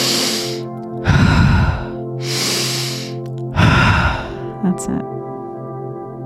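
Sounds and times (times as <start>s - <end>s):
slow deep breathing in through the nose and out: 0.0s - 4.6s
speech: 4.8s - 5.3s.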